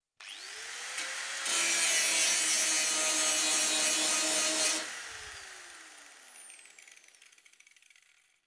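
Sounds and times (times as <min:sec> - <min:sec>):
electric grinder short burst on construction: 0:00.2 - 0:08.3.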